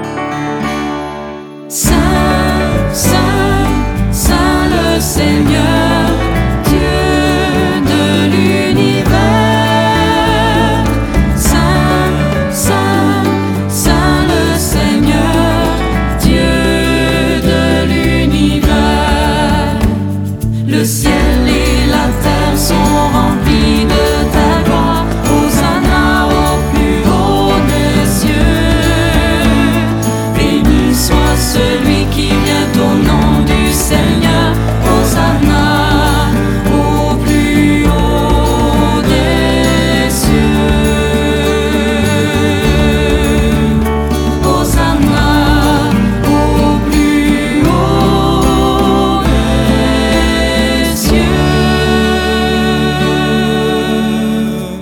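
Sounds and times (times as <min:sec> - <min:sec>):
sacred choral piece: 0:00.1 - 0:54.8.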